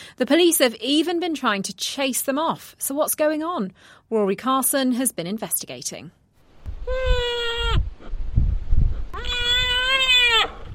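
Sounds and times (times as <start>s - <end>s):
speech: 0.2s - 6.2s
white mountain goat bleating: 6.9s - 7.8s, 9.2s - 10.7s.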